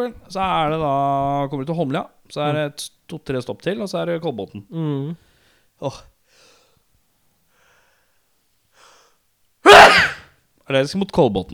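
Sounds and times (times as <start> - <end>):
speech: 0.0 - 6.1, 10.7 - 11.5
person sneezing into an elbow: 9.6 - 10.3.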